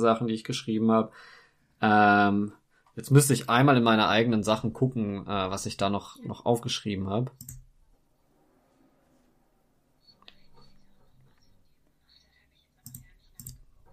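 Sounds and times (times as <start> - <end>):
speech: 0.0 - 7.6
computer mouse clicks: 7.4 - 7.7, 12.8 - 13.9.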